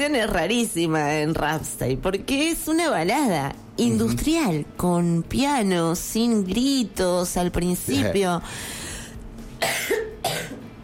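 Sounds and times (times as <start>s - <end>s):
speech: 0.0s - 8.8s
faint low hum: 0.0s - 10.8s
person coughing: 9.6s - 10.7s.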